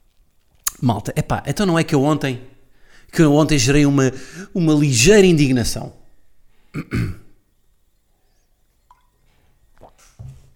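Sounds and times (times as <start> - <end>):
lips clicking: 0.6 - 0.8
speech: 0.8 - 6.0, 6.8 - 7.2
throat clearing: 6.8 - 7.4
person sipping water: 8.9 - 10.2.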